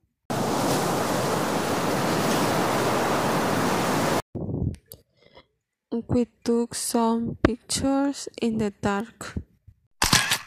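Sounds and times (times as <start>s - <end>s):
sea surf washing on a shore: 0.3s - 4.2s
speech: 6.0s - 9.5s.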